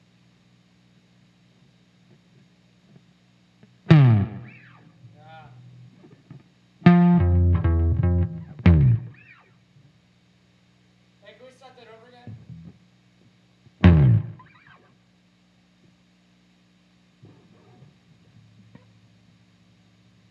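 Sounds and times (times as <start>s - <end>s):
bass slide: 3.9s - 4.6s, 6.9s - 9.2s, 13.8s - 14.4s.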